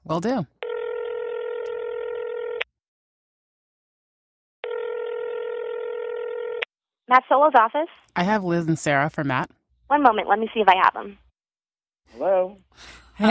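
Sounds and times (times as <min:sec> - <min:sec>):
speech: 0:00.1 - 0:00.6, 0:07.1 - 0:11.2, 0:12.1 - 0:13.2
long steady electronic telephone dialing tones: 0:00.6 - 0:02.6, 0:04.6 - 0:06.6.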